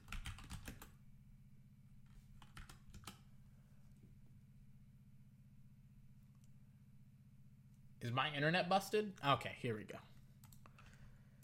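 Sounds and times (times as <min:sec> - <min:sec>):
faint typing on a computer keyboard: 0:00.0 - 0:01.0, 0:02.4 - 0:03.2, 0:10.4 - 0:11.4
speech: 0:08.0 - 0:10.1.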